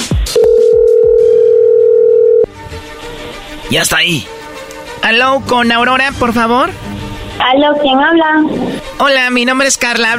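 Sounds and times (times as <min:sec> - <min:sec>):
telephone line tone as a call is dialed: 0:00.4 - 0:02.5
speech: 0:03.7 - 0:04.4, 0:05.0 - 0:10.1.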